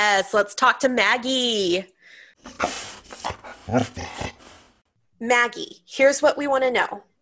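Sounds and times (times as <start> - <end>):
speech: 0.2 - 4.3, 5.2 - 7.1
dog high-pitched whine: 2.5 - 4.6.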